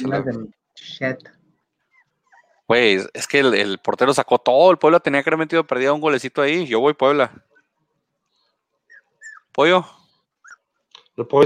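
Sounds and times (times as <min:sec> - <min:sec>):
speech: 0:00.0 - 0:01.4, 0:02.7 - 0:07.5, 0:09.6 - 0:10.0, 0:11.2 - 0:11.4
small dogs whimpering after waking up: 0:01.8 - 0:02.7, 0:08.9 - 0:09.6, 0:10.4 - 0:10.7.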